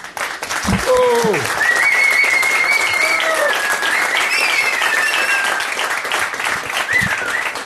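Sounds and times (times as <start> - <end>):
crowd applauding: 0.0 - 7.6
whoops and voices: 0.8 - 3.8.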